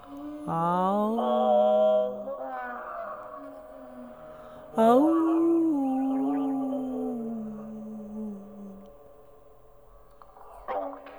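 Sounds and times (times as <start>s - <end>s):
person howling like a wolf: 0.0s - 8.8s
speech: 0.1s - 1.3s, 4.8s - 5.2s.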